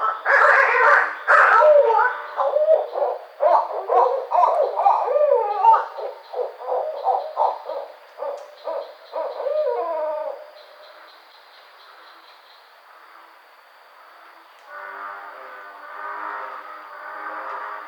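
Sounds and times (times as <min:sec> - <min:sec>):
barred owl hooting: 0:00.0 - 0:12.5
soft background hiss: 0:00.0 - 0:17.8.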